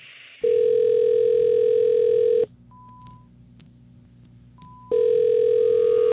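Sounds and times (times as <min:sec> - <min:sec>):
loud steady telephone dial tone: 0:00.4 - 0:03.2, 0:04.6 - 0:06.1.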